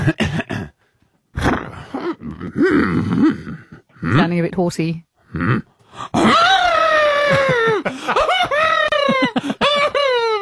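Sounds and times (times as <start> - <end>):
speech: 0.0 - 0.5, 2.2 - 6.5, 7.3 - 9.5
person imitating an elephant call: 1.4 - 4.3, 5.3 - 7.6.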